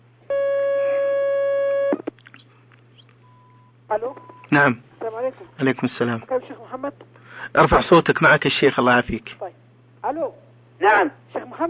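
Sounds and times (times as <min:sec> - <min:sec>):
steady electronic telephone line tone connecting a call-in question: 0:00.3 - 0:02.0
telephone line click: 0:01.8 - 0:02.2
speech: 0:03.9 - 0:11.6.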